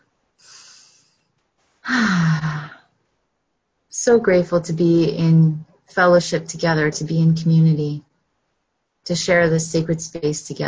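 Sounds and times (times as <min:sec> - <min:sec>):
sighing exhale with a low voiced tone during guided group breathing: 0:00.4 - 0:01.2
person taking a slow deep breath in during guided group breathing: 0:00.4 - 0:02.8
speech: 0:04.0 - 0:08.1, 0:09.1 - 0:10.6.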